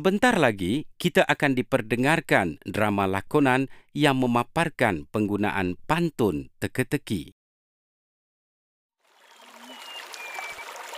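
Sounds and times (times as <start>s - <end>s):
speech: 0.0s - 7.4s
river flowing: 9.1s - 10.9s
faint chirps or whistles: 9.2s - 10.8s.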